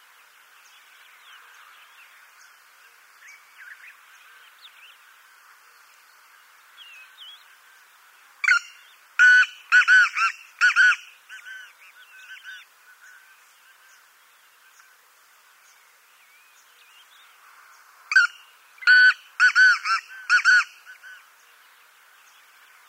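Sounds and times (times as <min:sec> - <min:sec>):
Black francolin rasping harmonic call: 0:08.4 - 0:14.0, 0:18.1 - 0:21.3.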